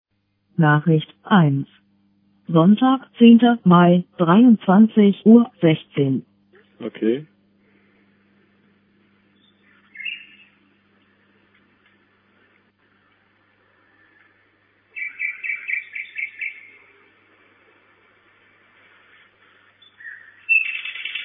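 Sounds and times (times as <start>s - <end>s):
speech: 0.6s - 1.8s, 2.5s - 7.3s
common nightingale singing at a nest box: 9.4s - 10.6s, 15.0s - 16.8s, 19.8s - 21.2s.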